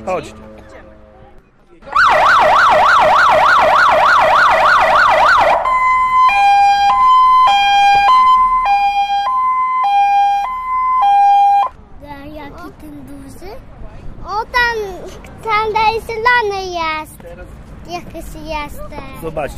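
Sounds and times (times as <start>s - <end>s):
speech: 0.0s - 0.5s, 16.4s - 19.5s
fire station alarm siren wailing: 1.9s - 11.7s.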